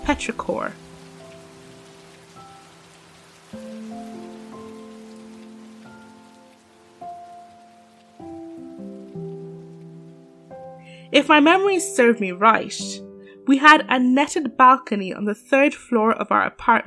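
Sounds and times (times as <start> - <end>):
steady rain pattering: 0.0 - 11.7
speech: 0.1 - 0.9, 11.2 - 16.8.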